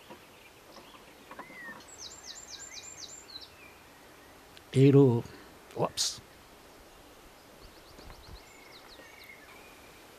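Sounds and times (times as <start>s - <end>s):
faint birds chirping: 0.0s - 10.1s
soft outdoor rustling: 0.0s - 10.1s
speech: 4.7s - 6.2s.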